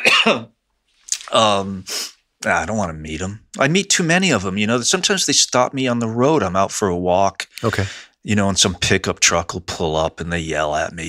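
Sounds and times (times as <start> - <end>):
person coughing: 0.0 - 0.5, 7.6 - 8.0
speech: 0.2 - 0.6, 1.3 - 11.0.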